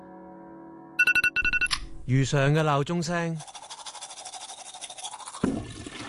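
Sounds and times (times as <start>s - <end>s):
speech: 2.1s - 3.5s
teeth being brushed with a toothbrush: 3.0s - 6.0s.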